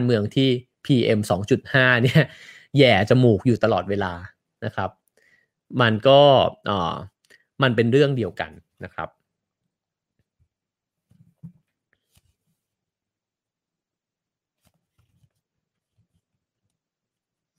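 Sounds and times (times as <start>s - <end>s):
speech: 0.0s - 5.0s, 5.7s - 9.2s
paper pages being turned and handled: 14.6s - 16.7s.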